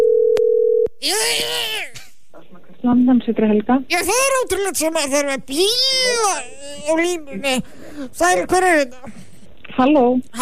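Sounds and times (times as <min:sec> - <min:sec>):
telephone tone as a call is placed: 0:00.0 - 0:00.9
speech: 0:01.0 - 0:01.6, 0:02.8 - 0:09.2, 0:09.8 - 0:10.4.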